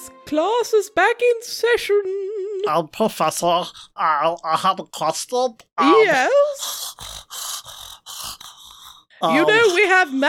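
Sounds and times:
speech: 0:00.3 - 0:07.1, 0:09.2 - 0:10.2
heavy rasping breaths: 0:03.5 - 0:04.0, 0:06.4 - 0:10.0.

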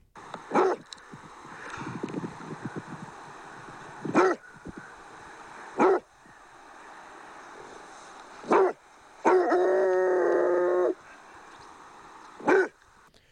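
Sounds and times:
Basset Hound barking and baying: 0:00.4 - 0:00.9, 0:03.5 - 0:06.1, 0:08.4 - 0:11.2, 0:12.3 - 0:12.8.

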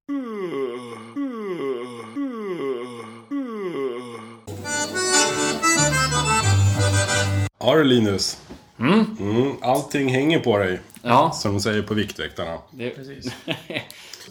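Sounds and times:
person yawning: 0:00.1 - 0:04.5
loud busy music: 0:04.5 - 0:07.5
speech: 0:07.6 - 0:14.2
laughter: 0:13.2 - 0:14.0.

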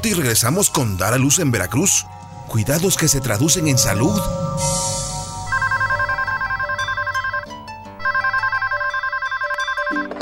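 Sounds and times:
speech: 0:00.0 - 0:04.9
telephone ringing with electronic trill: 0:05.4 - 0:10.2.

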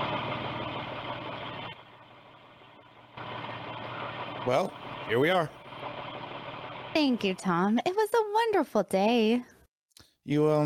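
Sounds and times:
car engine idling after driving up to a boarding house: 0:00.0 - 0:07.6
speech: 0:04.4 - 0:05.6, 0:07.0 - 0:09.5, 0:10.3 - 0:10.6.

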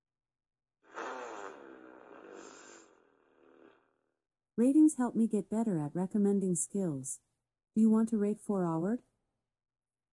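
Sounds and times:
fart sound effect from an Amazon Echo Dot smart speaker: 0:00.9 - 0:03.8
speech: 0:04.6 - 0:09.1.

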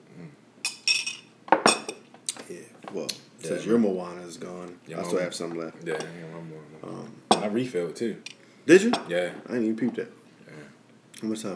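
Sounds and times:
glasses clinking in a toast: 0:00.7 - 0:02.0, 0:07.3 - 0:07.6
speech: 0:02.5 - 0:10.2, 0:11.2 - 0:11.5.

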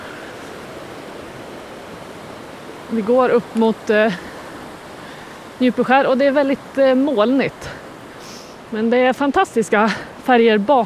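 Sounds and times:
waterfall roaring: 0:00.0 - 0:10.8
speech: 0:02.9 - 0:04.3, 0:05.6 - 0:07.8, 0:08.7 - 0:10.8.

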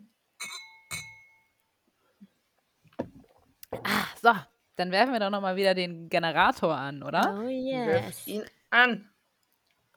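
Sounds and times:
glasses clinking in a toast: 0:00.4 - 0:01.4
speech: 0:04.2 - 0:09.1.

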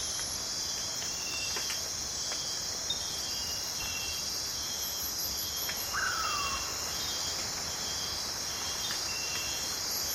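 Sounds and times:
insects piercing multi-layered buzzing chorus in Amazon rainforest at night: 0:00.0 - 0:10.1.

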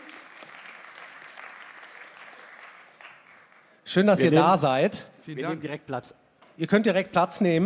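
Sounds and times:
audience applause: 0:00.0 - 0:03.8
speech: 0:03.9 - 0:07.6.

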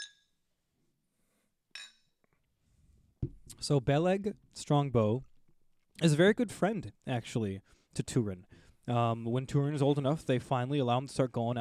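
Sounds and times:
glasses of cider clinking in a toast: 0:01.8 - 0:02.1
speech: 0:03.6 - 0:05.3, 0:06.0 - 0:11.5.

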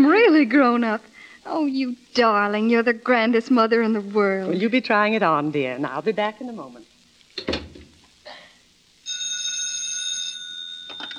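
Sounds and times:
speech: 0:00.4 - 0:07.6
telephone ringing with an electronic bell tone: 0:09.1 - 0:11.1.

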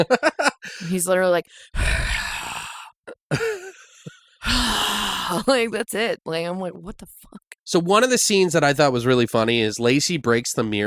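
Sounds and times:
laughter: 0:00.0 - 0:01.0, 0:03.3 - 0:04.2
speech: 0:00.0 - 0:02.2, 0:03.3 - 0:03.5, 0:04.5 - 0:10.8
person imitating heavy raspy mouth breathing: 0:01.7 - 0:05.5.

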